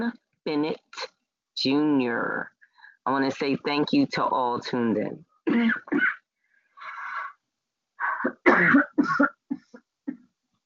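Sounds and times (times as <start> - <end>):
speech: 0.0 - 6.1, 8.2 - 9.3
dry hacking coughs: 5.5 - 6.2, 8.2 - 9.6.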